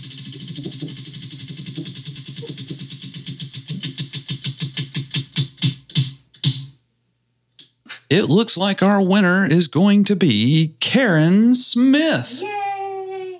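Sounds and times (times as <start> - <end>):
prize wheel pointer ticking as the wheel spins: 0.0 - 6.7
speech: 8.1 - 12.7.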